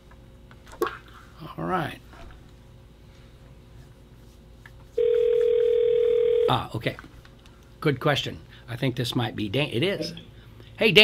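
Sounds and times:
speech: 1.6s - 2.1s, 6.5s - 7.2s, 7.8s - 11.0s
telephone dial tone while calling a listener: 5.0s - 6.5s.

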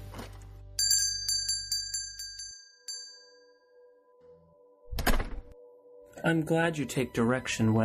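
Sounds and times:
door entry bell chiming at a coffee shop: 0.8s - 5.9s
dull door thud: 4.9s - 5.6s
speech: 6.2s - 7.8s.

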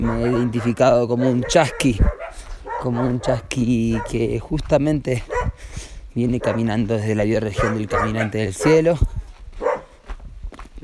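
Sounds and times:
dog yelping: 0.0s - 4.3s, 5.3s - 5.6s, 6.4s - 6.8s, 7.5s - 8.9s, 9.6s - 9.9s
dog barking: 0.0s - 4.4s, 5.2s - 5.6s, 6.3s - 10.0s
speech: 0.0s - 9.2s.

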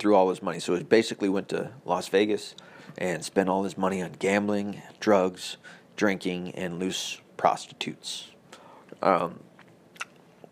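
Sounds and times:
speech: 0.0s - 8.4s, 9.0s - 9.5s
chewing nicotine gum: 9.6s - 10.5s
mouth clicks: 9.6s - 10.5s.

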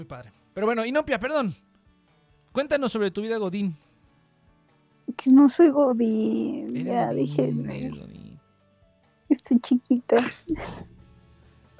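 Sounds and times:
speech: 0.0s - 1.7s, 2.6s - 3.8s, 5.1s - 8.1s, 9.4s - 10.9s
woman laughing: 9.8s - 10.9s.

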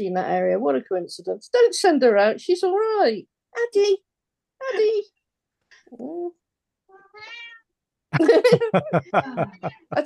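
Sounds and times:
speech: 0.0s - 5.2s, 5.9s - 6.4s, 8.1s - 10.0s
cat meowing: 6.9s - 7.7s
laughter: 8.2s - 10.0s.

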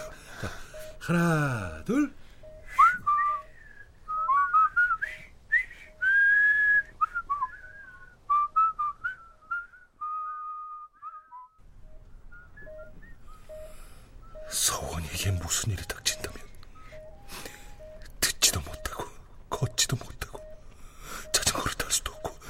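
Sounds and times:
faint breathy noise: 0.0s - 8.3s, 11.8s - 22.4s
speech: 0.4s - 2.3s
person whistling a slow tune: 2.4s - 11.6s, 12.3s - 19.0s.

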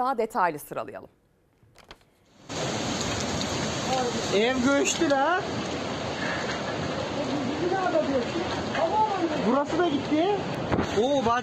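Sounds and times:
speech: 0.0s - 1.2s, 3.9s - 5.8s, 7.8s - 11.4s
heavy rain downpour: 2.3s - 11.4s.

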